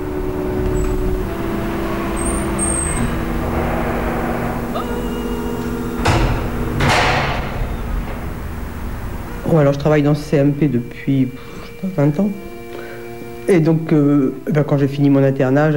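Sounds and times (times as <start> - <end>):
door being pushed open at a child psychiatrist's practice in Paris: 0.0 - 10.3
steady low mechanical hum: 0.0 - 15.7
speech: 9.5 - 12.5, 13.5 - 15.7.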